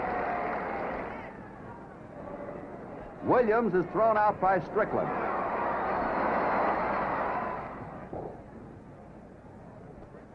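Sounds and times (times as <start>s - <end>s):
baseball stadium crowd in Cleveland cheering after a strikeout: 0.0s - 8.1s
speech: 3.2s - 5.3s.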